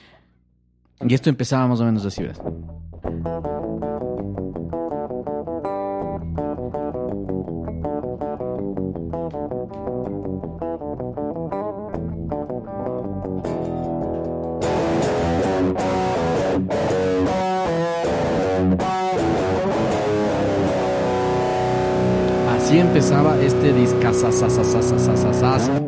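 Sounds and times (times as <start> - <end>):
speech: 1.0 - 3.4, 22.7 - 25.8
rhythmic electric guitar riff opening a rock album: 2.4 - 25.8
loud distorted full rock band playing: 13.2 - 25.8.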